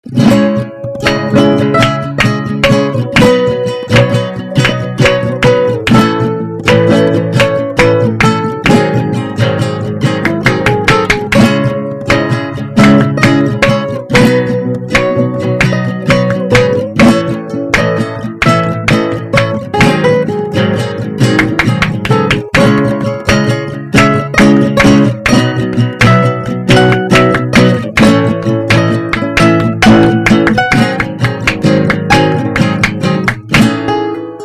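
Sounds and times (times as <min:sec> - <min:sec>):
flamenco music: 0:00.0 - 0:34.4.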